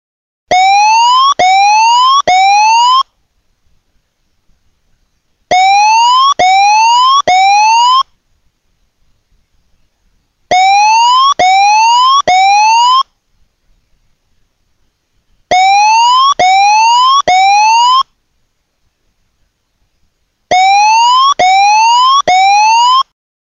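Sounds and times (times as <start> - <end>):
tsunami warning siren whooping: 0.5 - 3.0, 5.5 - 8.0, 10.5 - 13.0, 15.5 - 18.0, 20.5 - 23.1.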